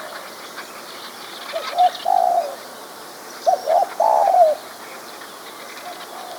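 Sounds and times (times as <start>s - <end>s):
spotted dove cooing song: 1.5s - 2.6s, 3.4s - 4.6s, 5.8s - 6.3s.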